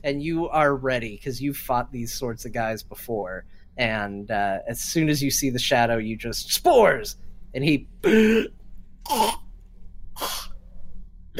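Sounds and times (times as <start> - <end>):
speech: 0.0 - 9.4
voice imitating a man coughing and hacking: 8.0 - 9.5.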